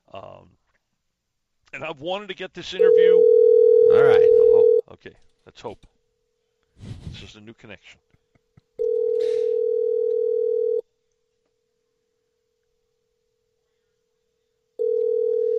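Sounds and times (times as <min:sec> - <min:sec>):
speech: 0:01.7 - 0:05.9, 0:06.8 - 0:08.1
electronic ringback tone of a phone call: 0:02.8 - 0:04.8, 0:08.8 - 0:10.8, 0:14.8 - 0:15.5.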